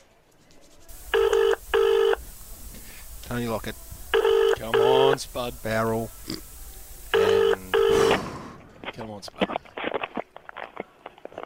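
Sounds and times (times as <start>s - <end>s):
telephone ringing after a number is dialled: 1.1s - 2.2s, 4.1s - 5.3s, 7.1s - 8.1s
speech: 3.3s - 3.9s, 4.6s - 6.5s, 9.0s - 9.6s.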